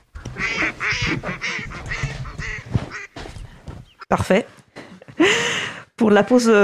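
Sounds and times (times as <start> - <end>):
ducks quacking: 0.2 - 4.1
speech: 4.1 - 4.6, 5.2 - 6.6.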